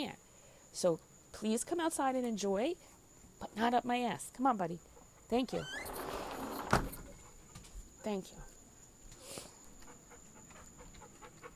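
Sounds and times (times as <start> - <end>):
speech: 0.0 - 6.0, 8.0 - 8.5
dog sniffing and panting: 7.1 - 8.0, 9.2 - 11.5.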